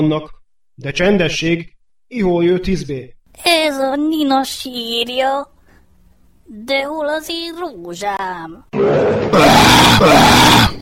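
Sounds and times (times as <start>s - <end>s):
speech: 0.0s - 5.5s, 6.5s - 10.8s
man roaring in imitation of a lion: 8.7s - 10.8s.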